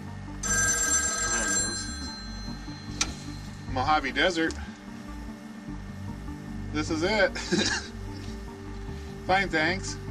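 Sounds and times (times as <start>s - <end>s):
modern push-button telephone ringing in the Mojave Desert: 0.4s - 4.5s
speech: 3.8s - 4.7s, 6.7s - 7.9s, 9.3s - 10.0s.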